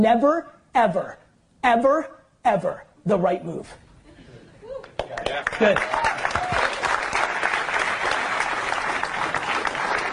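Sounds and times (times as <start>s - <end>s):
speech: 0.0s - 3.8s, 4.7s - 6.4s
audience clapping: 4.8s - 10.1s.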